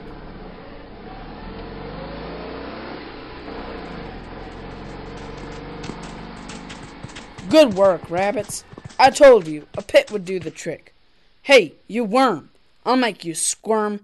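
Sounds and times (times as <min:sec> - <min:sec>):
car engine revving and accelerating as it drives off: 0:00.0 - 0:09.8
speech: 0:07.5 - 0:14.0.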